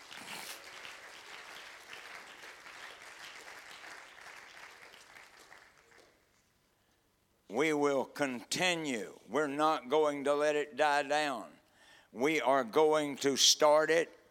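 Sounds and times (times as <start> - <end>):
audience clapping hands: 0.0 - 6.5
speech: 7.5 - 14.2.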